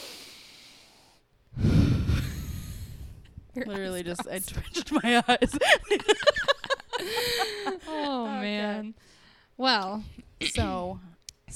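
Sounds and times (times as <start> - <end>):
deep breath: 0.0 - 3.4, 7.0 - 7.8, 9.0 - 9.6
speech: 3.6 - 7.6, 9.6 - 11.5
laughter: 3.8 - 8.5.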